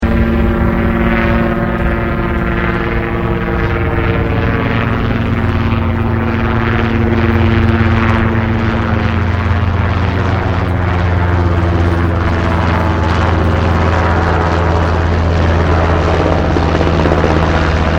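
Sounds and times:
helicopter passing overhead: 0:00.0 - 0:17.9.

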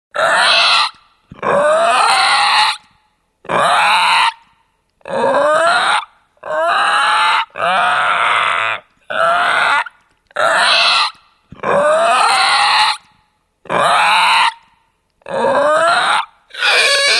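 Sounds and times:
baby dinosaur or reptilian alien creature croaking and crying: 0:00.2 - 0:02.8, 0:05.0 - 0:13.0, 0:13.7 - 0:14.6, 0:15.2 - 0:17.1.

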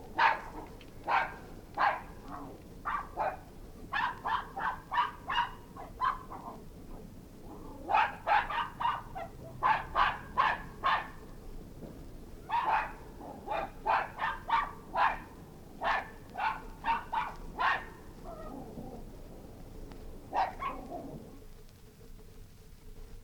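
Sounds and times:
two Maltese terriers barking: 0:00.0 - 0:11.6, 0:12.3 - 0:21.5
steady soft background hiss: 0:00.0 - 0:23.2.

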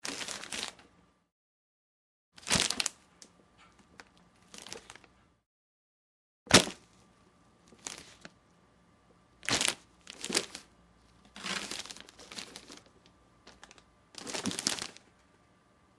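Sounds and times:
Christmas present wrapping crinkling as it is moved and grabbed: 0:00.0 - 0:00.9, 0:02.4 - 0:03.0, 0:04.0 - 0:05.1, 0:07.7 - 0:08.4, 0:09.4 - 0:15.1.

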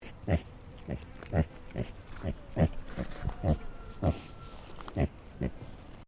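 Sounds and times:
Tamworth pig grunting: 0:00.0 - 0:04.3.

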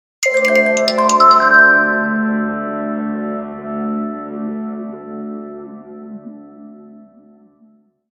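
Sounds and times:
vibraphone chime melody as a sonic logo: 0:00.2 - 0:02.6.

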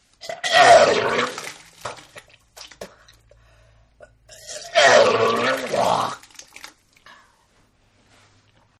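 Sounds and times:
human vomiting: 0:00.2 - 0:01.6, 0:04.3 - 0:06.3.

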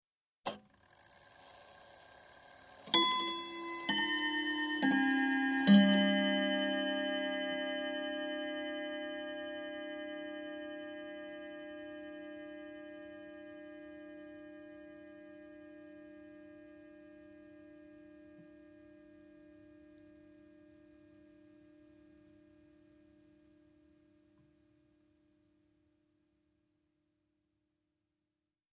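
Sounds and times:
domestic chiming clock striking quarter past the hour: 0:02.5 - 0:15.4.

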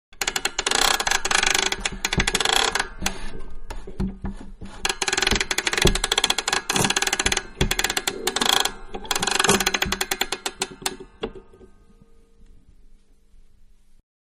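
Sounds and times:
music box winding: 0:00.2 - 0:03.9, 0:04.8 - 0:11.2.

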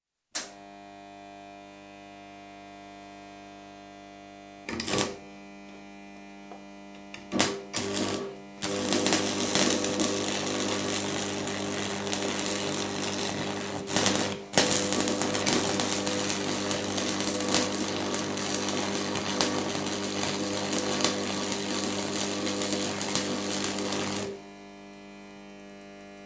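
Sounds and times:
arc welding machine switching on and off: 0:00.4 - 0:00.6, 0:04.7 - 0:05.2, 0:06.9 - 0:26.2.

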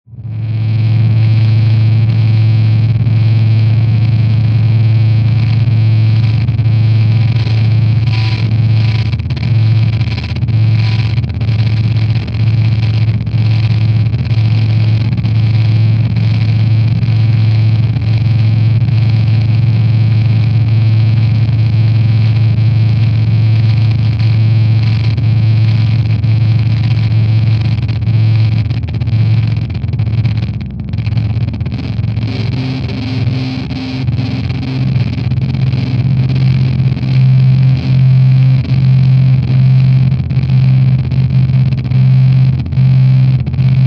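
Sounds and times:
dark stuttering distorted drone: 0:00.1 - 0:43.8.

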